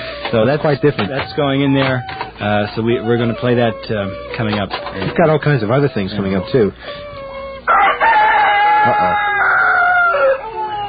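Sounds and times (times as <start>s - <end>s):
speech: 0.3s - 7.1s, 8.8s - 9.2s
rooster crowing loudly: 7.4s - 10.8s.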